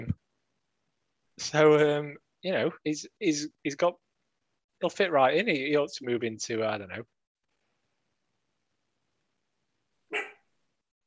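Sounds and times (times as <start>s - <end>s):
speech: 1.4s - 4.0s, 4.8s - 7.1s
dog barking: 10.1s - 10.4s.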